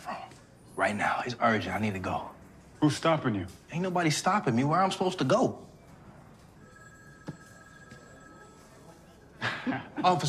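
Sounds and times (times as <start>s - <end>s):
speech: 0.8s - 5.7s, 10.0s - 10.2s
phone ringing with a steady electronic tone: 6.0s - 9.3s.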